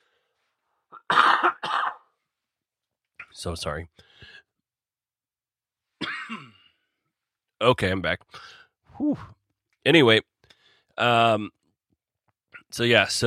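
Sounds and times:
harsh coughing fit: 0:00.9 - 0:02.1, 0:06.0 - 0:06.8
speech: 0:03.4 - 0:04.3, 0:06.3 - 0:06.6, 0:07.6 - 0:10.3, 0:11.0 - 0:11.6, 0:12.7 - 0:13.2.

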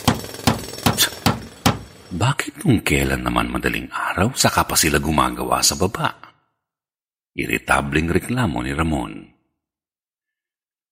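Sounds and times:
hammer blows pounding: 0:00.0 - 0:02.3
speech: 0:02.1 - 0:06.3, 0:07.4 - 0:09.4.

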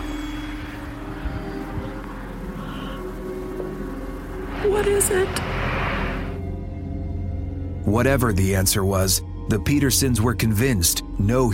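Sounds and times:
trumpet-like tones in the sky: 0:00.0 - 0:06.4
traffic rumble from passing cars: 0:00.0 - 0:06.5
speech: 0:04.7 - 0:05.5, 0:07.9 - 0:11.5.

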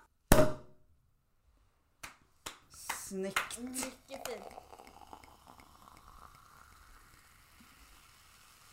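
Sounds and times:
speech: 0:03.1 - 0:04.8
sparkling wine cork popping: 0:03.8 - 0:08.7.

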